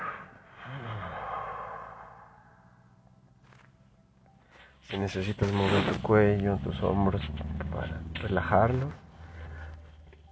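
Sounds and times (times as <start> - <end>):
person exhaling during a relaxation breathing exercise: 0.0 - 2.6
speech: 4.8 - 9.0.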